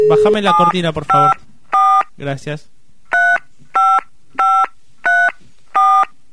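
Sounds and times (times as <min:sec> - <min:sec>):
speech: 0:00.1 - 0:01.5, 0:02.2 - 0:02.8
DTMF telephone keypad tones: 0:03.1 - 0:06.1.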